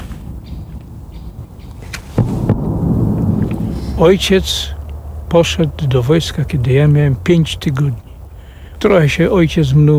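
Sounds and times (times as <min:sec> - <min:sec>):
mining explosives detonating on a test range: 0:02.1 - 0:05.8
heavy low rumble of mining explosives detonating: 0:02.2 - 0:08.6
speech: 0:04.0 - 0:08.0, 0:08.8 - 0:09.9.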